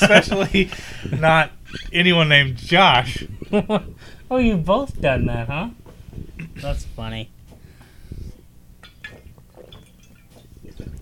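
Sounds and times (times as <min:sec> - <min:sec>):
speech: 0:00.1 - 0:05.8, 0:06.5 - 0:07.4
person drinking water from a glass and swallowing: 0:07.5 - 0:10.9
glass clinking: 0:08.8 - 0:10.5.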